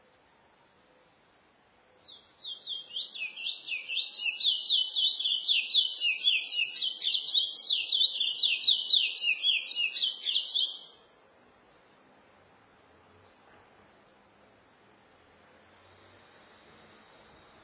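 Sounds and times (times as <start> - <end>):
chestnut-bellied seed finch singing: 2.0 - 10.9.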